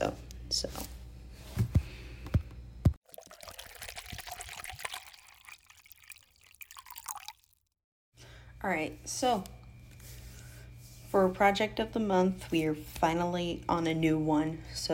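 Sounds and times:
speech: 0.6 - 0.9, 8.6 - 9.6, 11.1 - 14.9
water pouring to cleanse and charge a crystal: 3.0 - 7.7.

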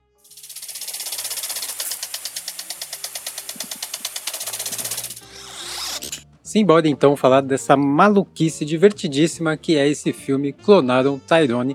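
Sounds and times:
rotating metal garden sprinkler rapid ticking: 0.2 - 5.2
rotating metal garden sprinkler spraying water: 0.2 - 6.0
speech: 6.5 - 11.7.

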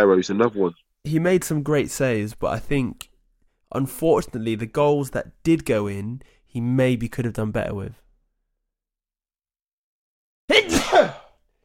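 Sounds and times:
speech: 0.0 - 3.1, 3.7 - 8.0, 10.5 - 11.2
loud powerful sneeze: 10.5 - 11.4.

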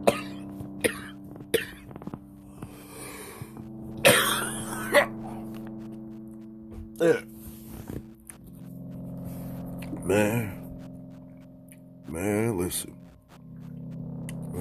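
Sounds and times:
person coughing: 4.0 - 5.4
people talking: 7.0 - 7.3, 9.8 - 10.6, 12.1 - 13.0, 14.3 - 14.5.

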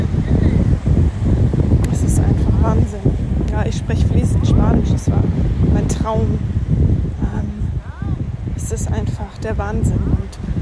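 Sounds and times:
steady loud wind buffeting the microphone on a beach: 0.0 - 10.6
speech: 6.1 - 6.6, 9.4 - 10.4.

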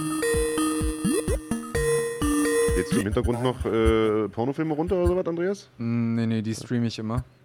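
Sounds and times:
distorted phone call ringing tone with wobbling pitch: 0.0 - 4.0
speech: 2.8 - 7.4.

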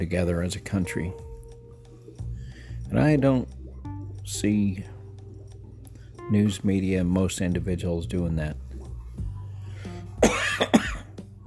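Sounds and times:
speech: 0.0 - 1.3, 2.9 - 3.6, 4.3 - 4.9, 6.3 - 8.6
person coughing: 10.2 - 11.2.

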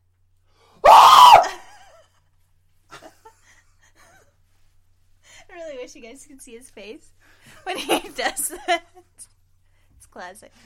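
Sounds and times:
shrill horror-movie scream: 0.8 - 1.7
speech: 6.0 - 9.3, 10.1 - 10.6.

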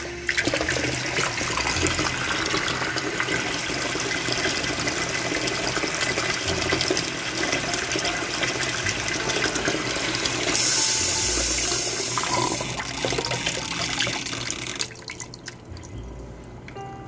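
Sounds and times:
fresh water running from a tap: 0.0 - 16.8.

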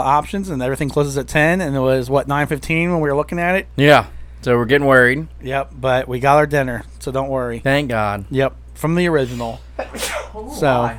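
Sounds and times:
speech: 0.0 - 10.9
sneeze: 9.2 - 10.5.

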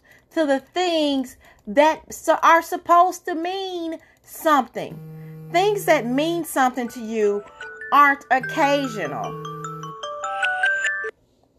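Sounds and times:
speech: 0.4 - 9.5
electronic phone alarm ringing with melodic beeping tones: 4.9 - 6.1, 8.3 - 10.1.

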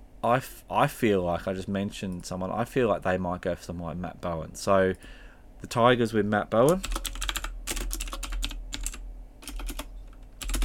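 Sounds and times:
low hum: 0.0 - 10.6
speech: 0.2 - 7.1
typing on a computer keyboard: 6.7 - 10.6.

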